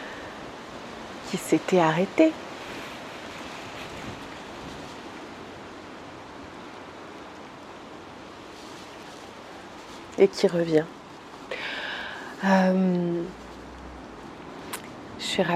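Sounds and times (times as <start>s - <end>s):
speech: 1.3s - 2.4s, 10.2s - 11.0s, 12.4s - 13.4s, 15.3s - 15.5s
wind blowing outdoors in a garden: 2.4s - 5.2s.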